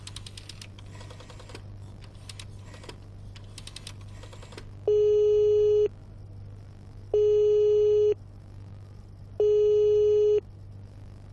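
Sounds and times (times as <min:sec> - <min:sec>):
low hum: 0:00.0 - 0:11.3
telephone busy signal through a receiver: 0:04.9 - 0:05.9, 0:07.2 - 0:08.2, 0:09.4 - 0:10.4.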